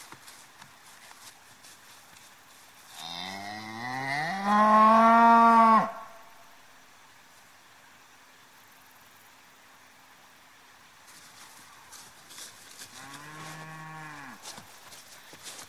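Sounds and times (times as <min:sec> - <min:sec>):
faint hiss: 0:00.0 - 0:15.6
cow mooing: 0:03.0 - 0:06.2, 0:13.0 - 0:14.4.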